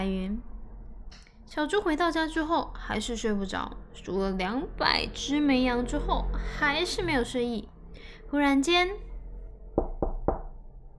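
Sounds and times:
speech: 1.6s - 7.7s, 8.3s - 9.1s
knocking on a door: 9.8s - 10.6s.

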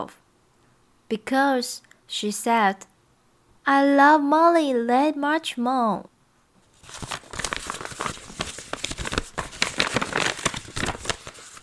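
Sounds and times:
speech: 0.0s - 0.2s, 1.1s - 2.9s, 3.7s - 6.1s, 6.9s - 7.2s
paper crinkling and rustling as a gift is wrapped: 6.6s - 11.6s.

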